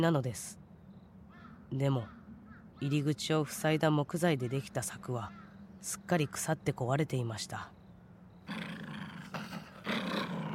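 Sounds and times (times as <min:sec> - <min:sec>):
speech: 0:00.0 - 0:00.6, 0:01.7 - 0:02.2, 0:02.8 - 0:07.8, 0:08.5 - 0:08.7
loud deep animal growling threateningly: 0:08.5 - 0:10.5.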